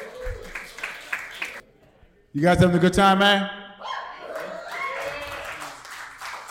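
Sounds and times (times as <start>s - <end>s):
comedy show audience applauding a comic: 0.0s - 1.6s, 4.3s - 6.5s
speech: 2.3s - 3.6s.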